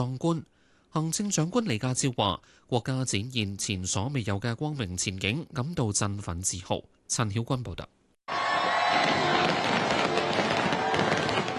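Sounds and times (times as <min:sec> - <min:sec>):
speech: 0:00.0 - 0:08.0
crowd of residents and tourists murmuring on the Tsim Sha Tsui waterfront: 0:08.3 - 0:11.5
fireworks display crackling and popping over Victoria Harbour, Hong Kong: 0:08.9 - 0:11.5.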